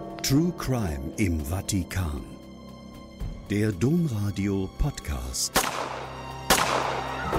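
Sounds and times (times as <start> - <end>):
speech: 0.3 - 2.3, 3.5 - 5.9
gunshots: 5.5 - 7.2.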